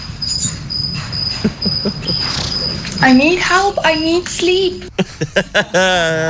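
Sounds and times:
cricket chirping at night: 0.0s - 4.2s
laughter: 1.4s - 3.0s, 4.9s - 6.2s
speech: 1.6s - 2.3s, 3.0s - 6.2s.

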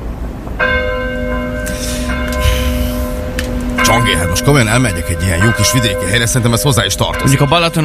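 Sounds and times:
church bell of a cathedral ringing: 0.6s - 7.8s
low rumble: 1.9s - 7.2s
speech: 3.9s - 7.8s.

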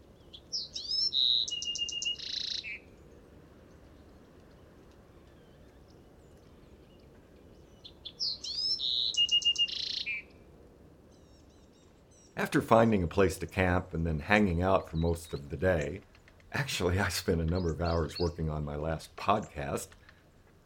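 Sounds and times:
Bewick's wren singing: 0.0s - 10.4s, 11.1s - 20.6s
low steady hum: 2.6s - 8.8s, 10.2s - 20.6s
speech: 12.5s - 20.0s.

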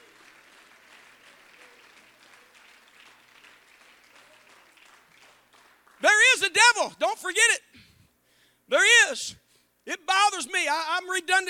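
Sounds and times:
audience clapping: 0.0s - 6.6s
speech: 6.6s - 7.8s, 8.7s - 11.4s.

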